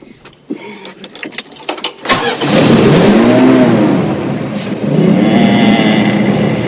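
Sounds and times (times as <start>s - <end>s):
car engine cranking and starting: 1.9s - 6.6s.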